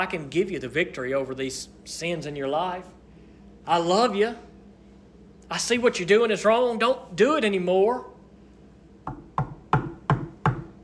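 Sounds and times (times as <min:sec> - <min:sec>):
speech: 0:00.0 - 0:03.0, 0:03.6 - 0:04.5, 0:05.5 - 0:08.1
firm knocks on a door: 0:09.1 - 0:10.8.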